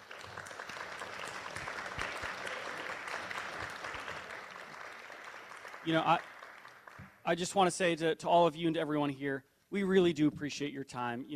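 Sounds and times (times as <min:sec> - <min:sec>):
crowd applauding for candidates: 0:00.0 - 0:07.6
speech: 0:05.8 - 0:06.3, 0:07.2 - 0:11.3.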